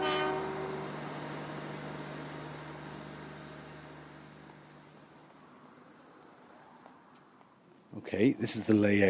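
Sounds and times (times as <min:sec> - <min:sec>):
train horn blast: 0:00.0 - 0:01.0
departing train rumbling and humming: 0:00.0 - 0:07.1
speech: 0:08.0 - 0:09.0.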